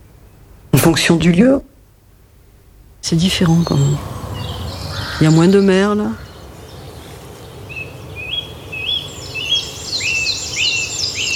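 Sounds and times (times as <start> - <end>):
speech: 0.8 - 1.7, 3.0 - 4.1, 5.2 - 6.3
low outdoor rumble: 3.0 - 11.2
small warbler singing: 3.1 - 11.3.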